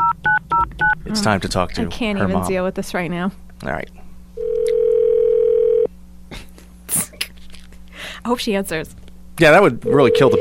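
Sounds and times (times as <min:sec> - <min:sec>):
speech: 0:01.1 - 0:04.0, 0:08.3 - 0:10.4
telephone dial tone while placing a call: 0:04.4 - 0:05.9.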